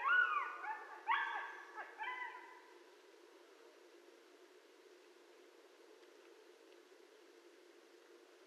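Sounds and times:
several coyotes yipping and howling: 0:00.0 - 0:02.8.

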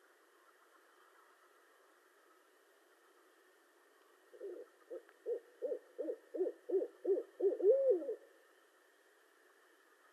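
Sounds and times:
faint steady hum: 0:00.0 - 0:10.1
barred owl hooting: 0:04.3 - 0:08.2.

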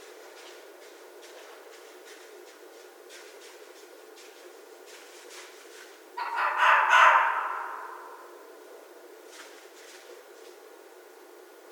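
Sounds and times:
red fox giving a loud rough scream: 0:06.2 - 0:08.2.

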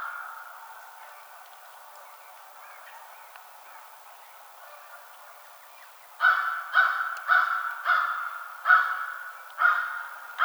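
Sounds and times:
American crow giving loud harsh caws: 0:06.2 - 0:10.4.

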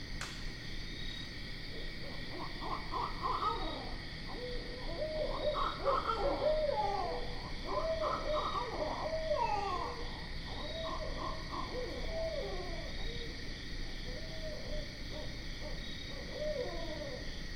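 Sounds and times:
sharp click: 0:00.2 - 0:00.6
barred owl chorus hooting and cackling: 0:01.7 - 0:17.4.

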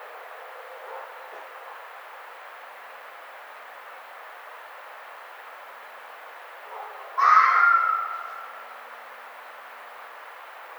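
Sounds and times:
red fox giving a harsh drawn-out scream: 0:07.2 - 0:08.6.

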